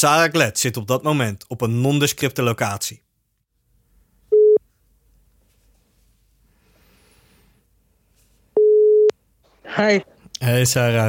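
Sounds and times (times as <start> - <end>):
speech: 0.0 - 3.1, 9.7 - 11.0
outgoing phone call ringing tone beeps: 4.3 - 4.6, 8.6 - 9.1.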